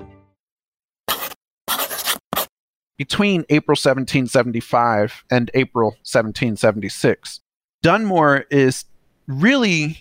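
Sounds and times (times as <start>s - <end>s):
quill pen scratching on paper: 1.1s - 2.5s
speech: 3.0s - 10.0s.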